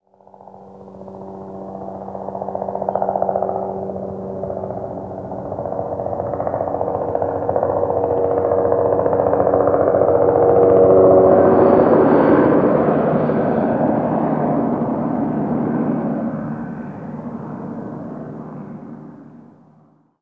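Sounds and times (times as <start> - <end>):
helicopter flying over: 0.0 - 20.1.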